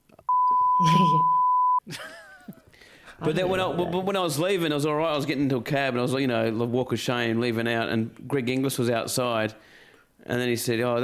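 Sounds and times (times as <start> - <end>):
censorship bleep masking a name: 0.3 - 1.8
speech: 0.8 - 1.3, 3.2 - 11.0.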